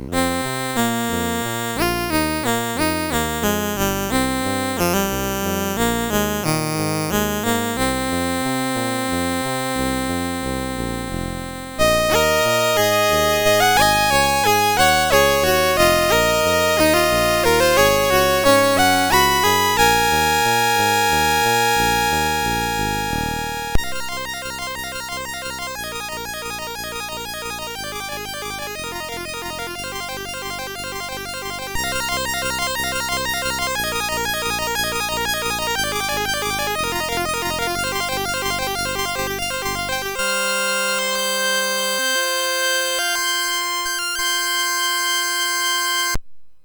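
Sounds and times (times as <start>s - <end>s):
MOS6581R2 synth chord: 0.2s - 46.2s.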